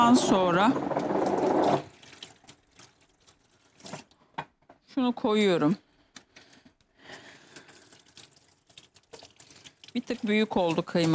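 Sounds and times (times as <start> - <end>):
speech: 0.0 - 1.8, 5.0 - 5.8, 10.0 - 11.1
running water splashing as hands are washed in a kitchen: 1.2 - 4.0, 7.4 - 11.1.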